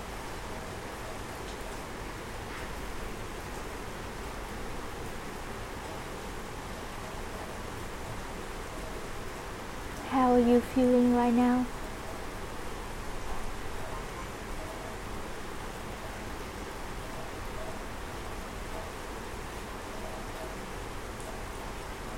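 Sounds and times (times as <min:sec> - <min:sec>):
steady rain falling: 0:00.0 - 0:22.1
speech: 0:10.2 - 0:11.8.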